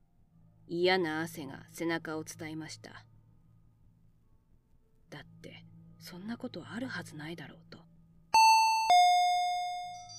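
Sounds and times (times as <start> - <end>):
speech: 0.7 - 3.1, 5.1 - 7.8
two-tone intercom doorbell chime: 8.4 - 10.1.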